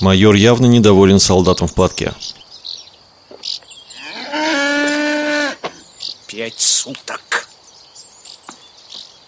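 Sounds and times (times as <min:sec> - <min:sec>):
speech: 0:00.0 - 0:02.4, 0:06.3 - 0:07.4
cow mooing while being milked: 0:03.9 - 0:05.7.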